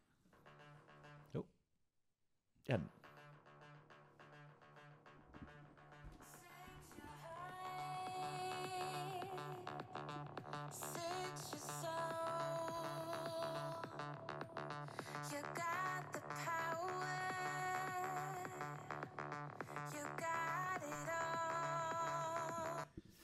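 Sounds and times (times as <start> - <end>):
speech: 1.3 - 1.6, 2.6 - 3.0
electropop song with pulsing beat, synth melodies and layered vocals: 4.2 - 22.9.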